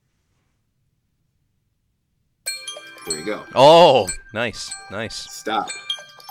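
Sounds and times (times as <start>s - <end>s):
phone default timer alarm: 2.5s - 6.2s
speech: 3.1s - 5.9s.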